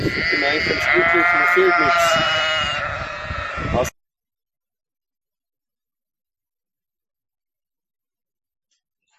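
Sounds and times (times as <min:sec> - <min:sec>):
speech: 0:00.0 - 0:02.5
sheep from a shepherd's flock bleating: 0:00.0 - 0:03.9.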